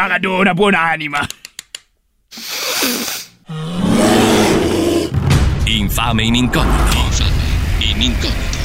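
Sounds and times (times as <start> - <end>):
speech: 0.0 - 1.4, 2.8 - 3.9, 5.7 - 7.4, 8.0 - 8.5
bear roaring: 3.5 - 5.2.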